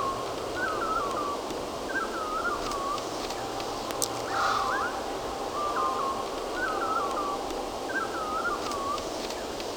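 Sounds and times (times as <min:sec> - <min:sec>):
backyard birds singing short warbled phrases: 0:00.0 - 0:09.5
dense steady hum and hiss: 0:00.0 - 0:09.7.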